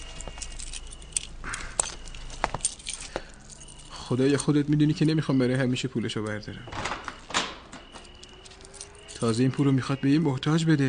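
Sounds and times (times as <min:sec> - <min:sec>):
keys jangling: 0:00.0 - 0:05.1, 0:07.7 - 0:09.5
speech: 0:04.1 - 0:07.0, 0:09.2 - 0:10.8.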